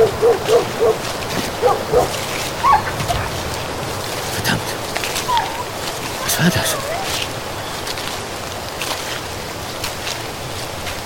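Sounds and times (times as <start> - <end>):
dog barking in short yaps: 0.0 - 3.4
steady rushing outdoor background: 0.0 - 11.0
speech: 6.4 - 6.7.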